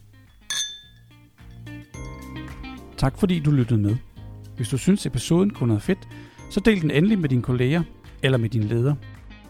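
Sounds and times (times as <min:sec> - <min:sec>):
glasses clinking in a toast: 0:00.0 - 0:02.7
speech: 0:01.7 - 0:02.3, 0:03.0 - 0:09.1.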